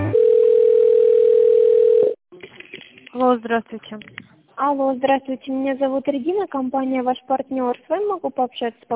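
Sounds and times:
steady telephone tone while a call is being transferred: 0:00.1 - 0:02.2
speech: 0:03.3 - 0:08.9.

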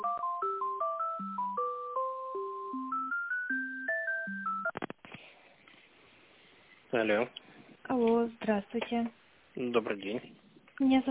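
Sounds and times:
electronic telephone tune while a call is transferred: 0:00.0 - 0:04.8
speech: 0:06.9 - 0:11.0.

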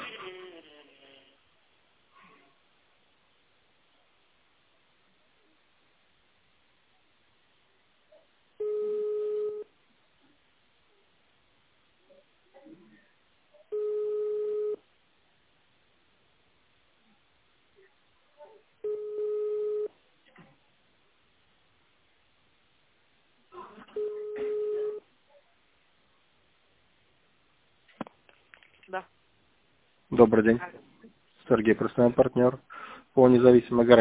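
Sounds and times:
telephone dialing beeps: 0:08.6 - 0:09.7, 0:13.7 - 0:14.8, 0:18.8 - 0:19.9, 0:24.0 - 0:25.0
telephone line ringing back after an internal extension is dialed: 0:08.6 - 0:09.7, 0:13.7 - 0:14.8, 0:18.8 - 0:19.9, 0:24.0 - 0:25.0
speech: 0:28.9 - 0:29.2, 0:30.2 - 0:30.8, 0:31.5 - 0:34.0.

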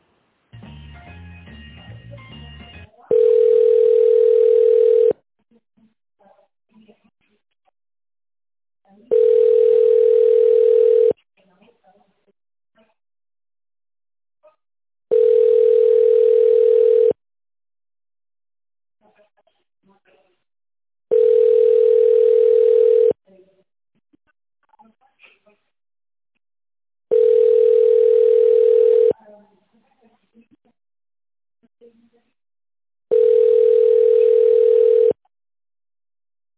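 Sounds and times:
telephone ringback tone while a call is transferred: 0:03.1 - 0:05.2, 0:09.1 - 0:11.2, 0:15.1 - 0:17.2, 0:21.1 - 0:23.2, 0:27.1 - 0:29.1, 0:33.1 - 0:35.2.

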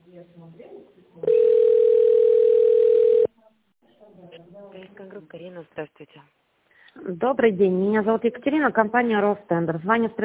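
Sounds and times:
steady electronic telephone tone on a business line's hold queue: 0:01.2 - 0:03.3
speech: 0:05.3 - 0:06.4, 0:07.0 - 0:10.2.

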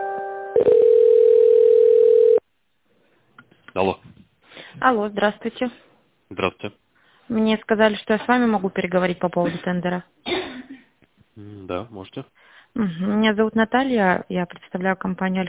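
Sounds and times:
electronic telephone tones while a call is connected: 0:00.5 - 0:02.4
speech: 0:04.9 - 0:10.2, 0:11.7 - 0:15.4.

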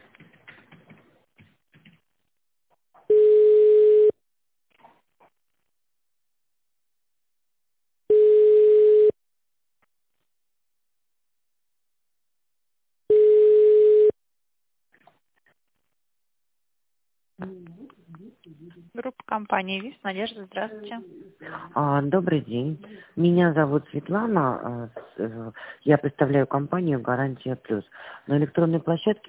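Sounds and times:
telephone ringback tone while a call is transferred to an operator: 0:03.1 - 0:04.2, 0:08.1 - 0:09.2, 0:13.1 - 0:14.2
speech: 0:18.6 - 0:29.2.

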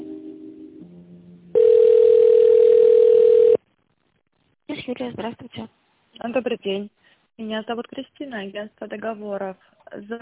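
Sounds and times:
telephone line tone while a call is transferred to a secretary: 0:01.6 - 0:03.6
speech: 0:05.0 - 0:10.2.

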